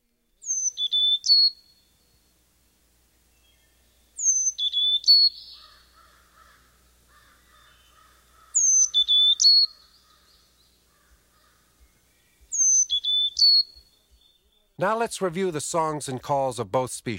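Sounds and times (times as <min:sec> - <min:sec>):
soft bird chatter: 0:00.4 - 0:02.4, 0:03.2 - 0:14.8
speech: 0:14.8 - 0:17.1.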